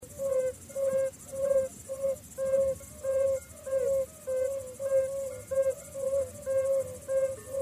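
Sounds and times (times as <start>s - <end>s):
Yellow-bellied toad Bombina variegata hooting calls: 0.0s - 7.6s
light background hiss: 0.0s - 7.6s.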